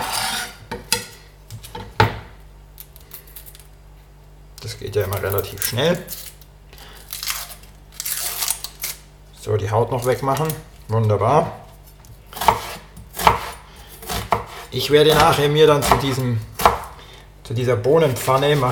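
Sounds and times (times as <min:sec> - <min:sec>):
speech: 0:04.8 - 0:06.3, 0:09.4 - 0:11.6, 0:14.7 - 0:16.5, 0:17.5 - 0:18.7
knife dicing an onion on a cutting board: 0:12.4 - 0:17.0, 0:18.0 - 0:18.7.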